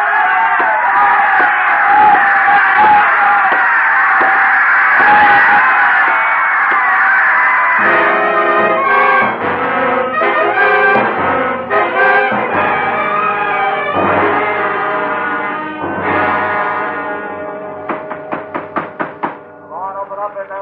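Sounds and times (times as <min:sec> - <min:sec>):
large crowd screaming and roaring at a championship sporting event: 0:00.0 - 0:19.2
sustained horn-like tone: 0:07.8 - 0:17.9.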